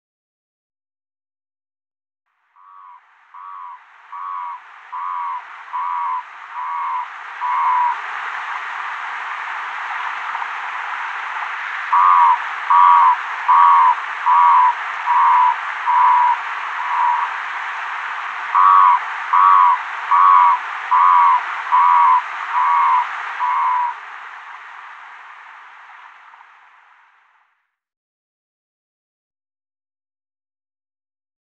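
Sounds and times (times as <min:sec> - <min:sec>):
Bufo guttatus calling: 0:02.6 - 0:08.0, 0:11.9 - 0:17.3, 0:18.5 - 0:24.0.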